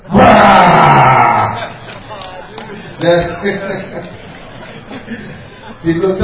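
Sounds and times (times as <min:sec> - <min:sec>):
person imitating a tiger roaring like a lion: 0:00.1 - 0:01.6
laughter: 0:00.9 - 0:06.2
speech: 0:03.0 - 0:04.2, 0:05.0 - 0:06.2.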